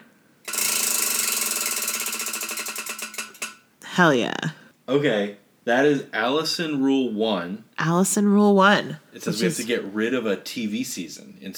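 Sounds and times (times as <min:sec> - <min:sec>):
homemade prize wheel spinning and clicking: 0:00.5 - 0:03.6
speech: 0:04.0 - 0:11.5.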